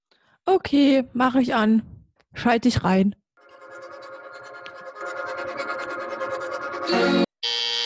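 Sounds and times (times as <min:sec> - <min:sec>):
speech: 0:00.5 - 0:03.2
song playing: 0:03.4 - 0:07.3
doorbell with harsh buzzing rings: 0:07.4 - 0:07.8.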